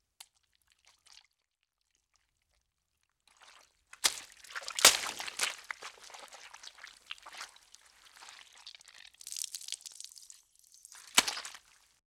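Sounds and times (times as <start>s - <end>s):
blood oozing squish: 3.4s - 12.0s
wet splat: 4.0s - 8.6s, 10.9s - 11.8s.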